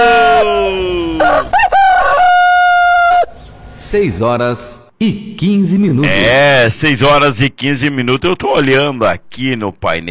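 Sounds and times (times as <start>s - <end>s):
rooster crowing: 0.0s - 3.4s
speech: 3.9s - 10.1s.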